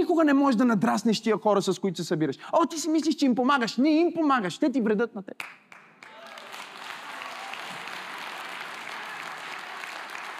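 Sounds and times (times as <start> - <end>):
speech: 0.0 - 5.8
audience clapping on a balcony during a church service: 5.4 - 10.3.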